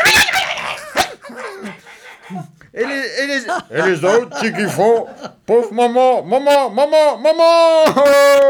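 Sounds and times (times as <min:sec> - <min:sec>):
dogs barking: 0:00.0 - 0:01.5
laughter: 0:00.0 - 0:08.4
speech: 0:03.1 - 0:08.4.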